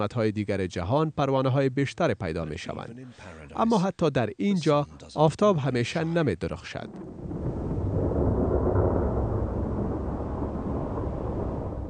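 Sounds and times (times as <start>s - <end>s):
speech: 0.0s - 7.4s
deep rumbling thunder: 6.8s - 11.8s
gusting wind: 6.8s - 11.8s
heavy rainstorm: 6.9s - 11.8s.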